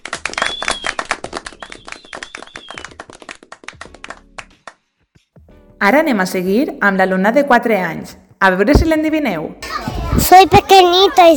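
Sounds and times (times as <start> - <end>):
crowd applauding: 0.0 - 4.8
whistles and cheers: 0.3 - 3.0
speech: 5.8 - 9.6, 10.2 - 11.3.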